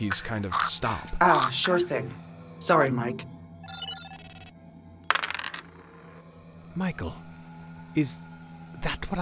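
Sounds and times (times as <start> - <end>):
speech: 0.0 - 3.8, 6.8 - 7.3, 8.0 - 9.2
bright ringing tone: 3.6 - 4.6
polyhedral dice rolling on a hard surface: 5.0 - 6.2.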